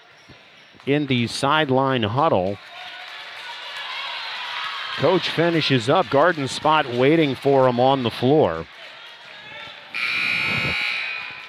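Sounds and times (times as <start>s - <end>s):
speech: 0.8s - 2.7s, 5.0s - 8.8s
basketball game buzzer at a high school boys' game: 10.0s - 11.4s.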